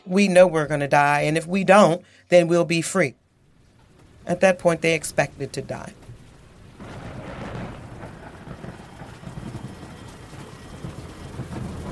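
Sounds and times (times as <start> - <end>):
speech: 0.1 - 3.2, 4.2 - 6.0
heavy rain pouring: 3.2 - 11.9
deep rolling rumble of thunder: 5.0 - 11.9.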